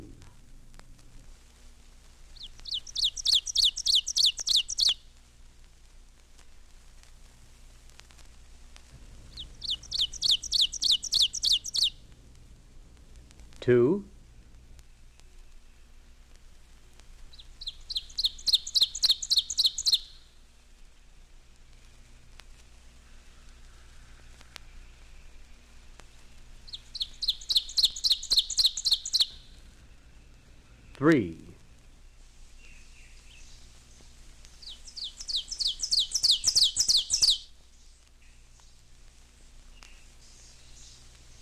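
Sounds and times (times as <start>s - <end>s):
quiet forest background: 0.0s - 41.3s
Ovenbird singing rapid ringing two-note phrases: 2.3s - 5.0s, 9.0s - 12.1s, 17.2s - 20.4s, 22.8s - 31.1s, 32.0s - 38.8s, 39.7s - 41.3s
speech: 13.7s - 14.1s, 31.0s - 31.4s.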